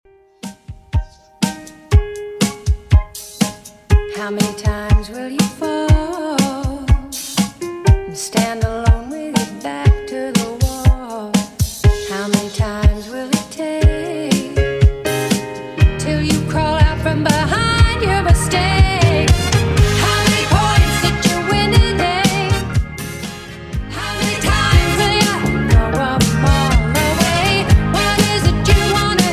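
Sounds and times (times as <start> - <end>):
80s Redrum drum machine beat at 121bpm: 0.4 - 29.3.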